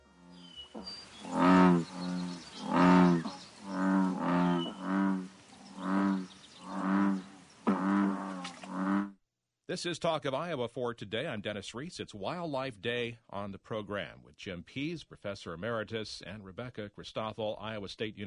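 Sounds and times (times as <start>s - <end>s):
Woodhouse's toads giving nasal bleating calls: 0.1s - 9.1s
speech: 9.7s - 18.2s.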